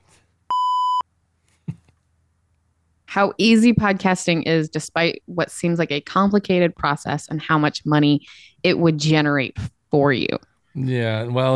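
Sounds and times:
loud electronic beep: 0:00.5 - 0:01.0
speech: 0:03.2 - 0:11.5.

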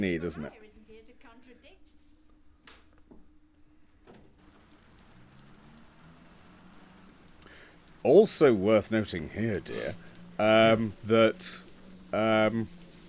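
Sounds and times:
speech: 0:00.0 - 0:00.8, 0:08.0 - 0:12.8
rain drips and splashes: 0:04.4 - 0:13.0
steady rain: 0:04.4 - 0:13.0.

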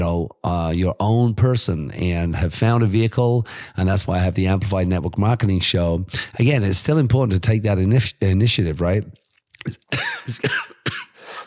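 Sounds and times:
speech: 0:00.2 - 0:11.1
person coughing: 0:09.6 - 0:11.4.

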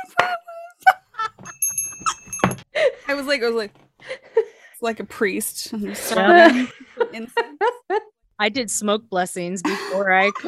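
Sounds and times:
small ritual bells ringing: 0:01.4 - 0:02.7
speech: 0:03.1 - 0:03.8, 0:04.8 - 0:10.4
laughter: 0:05.8 - 0:08.1, 0:09.6 - 0:10.4.

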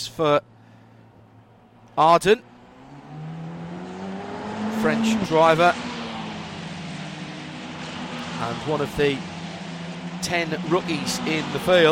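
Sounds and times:
speech: 0:00.1 - 0:00.6, 0:02.0 - 0:02.5, 0:04.8 - 0:05.9, 0:08.4 - 0:09.3, 0:10.2 - 0:11.9
Formula Renault race car engine passing at Monza: 0:01.2 - 0:11.9.

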